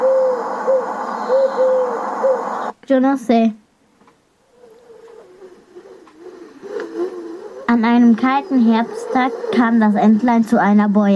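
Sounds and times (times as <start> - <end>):
eagle owl hooting: 0.0 - 2.7, 4.4 - 10.6
hiss: 0.0 - 11.1
speech: 2.9 - 3.6, 7.8 - 11.1.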